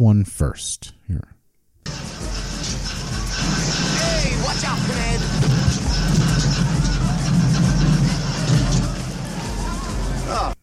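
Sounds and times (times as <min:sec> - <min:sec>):
speech: 0:00.0 - 0:01.4
rough beat-up old car engine rumbling at a parade: 0:01.9 - 0:10.3
crowd murmuring and chattering at a parade: 0:01.9 - 0:10.6.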